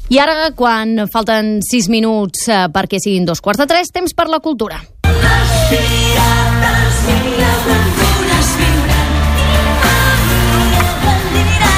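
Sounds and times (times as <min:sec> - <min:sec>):
speech: 0:00.1 - 0:04.9, 0:05.7 - 0:06.4
children's band playing a lively song live at a charity event: 0:05.1 - 0:11.7.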